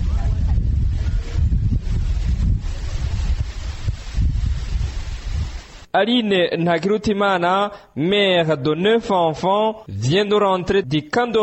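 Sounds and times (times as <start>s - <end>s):
wind blowing under oil palms on a hillside beside a national road: 0.0s - 5.9s
speech: 6.0s - 11.4s.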